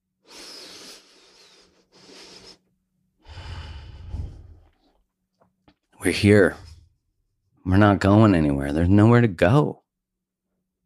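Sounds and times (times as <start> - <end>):
deep breath: 0.2 - 5.0
speech: 6.0 - 6.6, 7.7 - 9.8.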